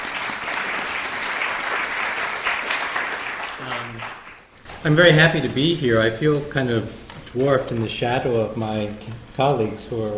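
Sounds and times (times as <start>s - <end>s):
audience applauding: 0.0s - 4.5s
speech: 4.8s - 10.1s.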